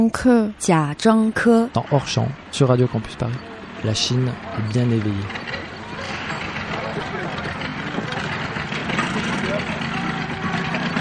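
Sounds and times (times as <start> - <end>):
speech: 0.0 - 6.2
motorcycle engine idling: 3.3 - 10.9.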